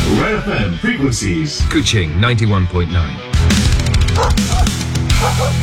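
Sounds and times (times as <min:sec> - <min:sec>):
speech: 0:00.2 - 0:05.6
aggressive dog barking: 0:04.1 - 0:05.6.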